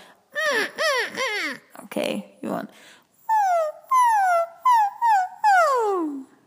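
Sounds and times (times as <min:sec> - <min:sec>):
voice imitating a puppy whimper: 0:00.3 - 0:01.8, 0:03.2 - 0:06.4
speech: 0:02.0 - 0:03.0.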